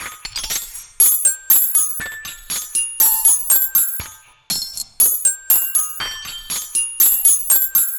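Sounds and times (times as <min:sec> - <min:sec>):
xylophone loop: 0:01.0 - 0:04.2, 0:05.0 - 0:07.9.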